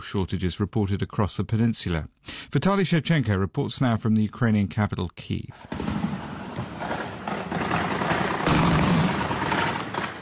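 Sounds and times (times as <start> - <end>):
speech: 0.0 - 6.0
Russian anti-aircraft fire at drones in Crimea: 5.7 - 10.2
dense roaring background: 6.0 - 10.2.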